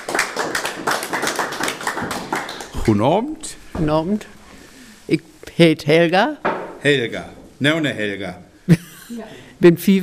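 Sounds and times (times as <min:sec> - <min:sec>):
audience applause at a Low German dialect evening: 0:00.0 - 0:03.0
speech: 0:02.9 - 0:04.3, 0:05.1 - 0:10.0.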